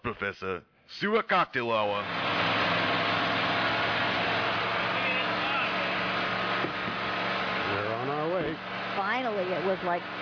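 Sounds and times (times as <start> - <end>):
speech: 0.2 - 2.3, 9.4 - 10.2
small silver Mercedes car engine rumbling: 1.9 - 10.2.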